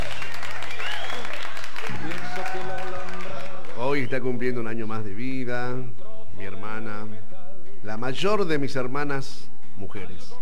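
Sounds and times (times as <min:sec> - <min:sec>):
applause: 0:00.0 - 0:04.1
speech: 0:04.0 - 0:10.4.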